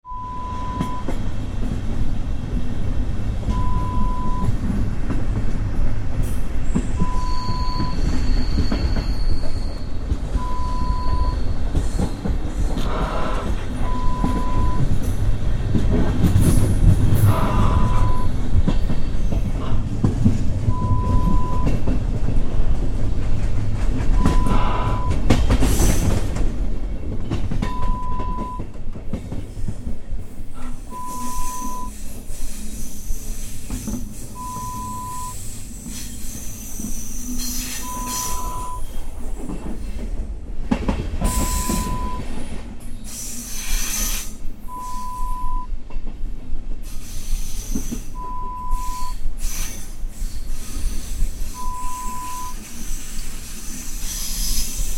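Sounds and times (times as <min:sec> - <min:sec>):
train heard from outside: 0:00.1 - 0:54.9.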